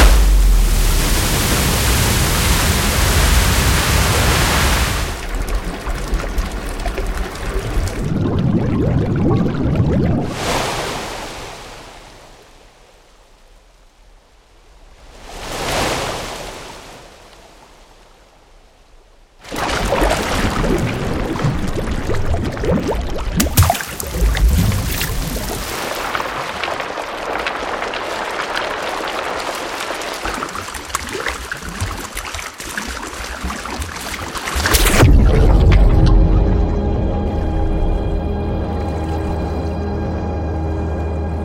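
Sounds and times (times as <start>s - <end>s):
water gushing: 0.0s - 10.6s, 19.4s - 35.9s
water rushing with a loud hiss: 0.0s - 12.8s, 19.4s - 41.4s
water trickling: 5.2s - 10.2s, 19.6s - 36.1s
steady low humming drone: 35.0s - 41.4s.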